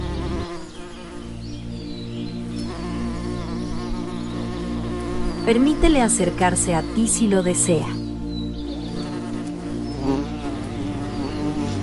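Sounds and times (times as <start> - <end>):
bee buzzing: 0.0 - 11.8
speech: 5.5 - 8.0.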